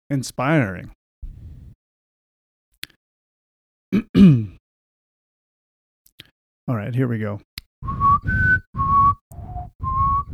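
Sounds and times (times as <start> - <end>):
speech: 0.1 - 1.0, 6.7 - 8.0
person whistling a short tune: 7.8 - 10.3.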